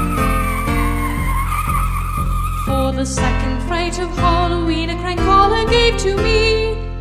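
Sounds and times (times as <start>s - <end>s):
hearse wheels squealing: 0.0s - 3.2s
steady rumble: 0.0s - 4.2s
speech: 3.0s - 6.7s.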